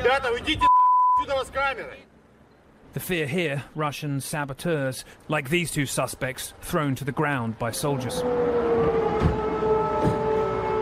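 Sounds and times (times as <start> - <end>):
speech: 0.2 - 0.7, 1.3 - 2.1, 2.9 - 9.4
air raid siren wailing: 8.0 - 10.7.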